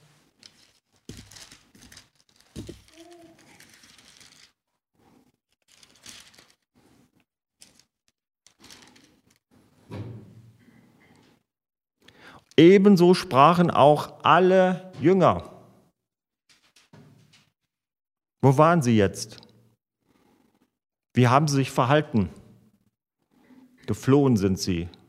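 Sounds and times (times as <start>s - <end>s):
pages of a book turning: 0.2s - 9.4s
speech: 12.6s - 15.5s, 18.4s - 19.4s, 21.2s - 22.4s, 23.9s - 25.0s.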